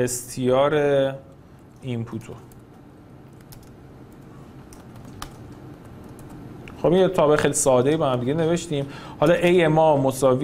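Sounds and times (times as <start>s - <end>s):
speech: 0.0s - 2.6s, 6.8s - 10.4s
steady low hum: 0.0s - 10.4s
typing on a computer keyboard: 1.6s - 6.5s.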